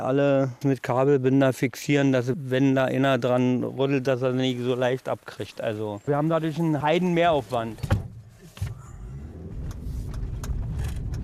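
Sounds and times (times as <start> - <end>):
speech: 0.0 - 8.0
car engine and tyre rumble driving along a forest running race route: 6.7 - 11.2
faint rattles and clicks inside the car cabin: 7.4 - 11.2.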